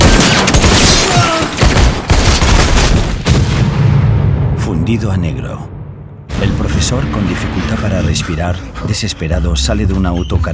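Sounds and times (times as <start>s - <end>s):
gunfire volley aimed toward a balcony: 0.0s - 4.4s
speech: 4.9s - 5.8s, 6.4s - 10.5s.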